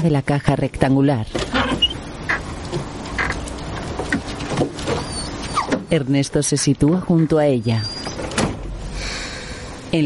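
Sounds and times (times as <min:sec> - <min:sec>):
speech: 0:00.0 - 0:01.8, 0:05.9 - 0:08.0
van rear door being opened: 0:01.3 - 0:05.9, 0:08.1 - 0:08.9.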